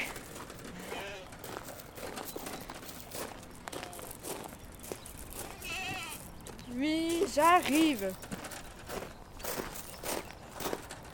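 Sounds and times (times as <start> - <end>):
shuffling and rustling: 0.0 - 11.1
farm animals bleating as they follow people carrying hay: 0.7 - 1.4, 5.5 - 6.3
speech: 6.8 - 8.3.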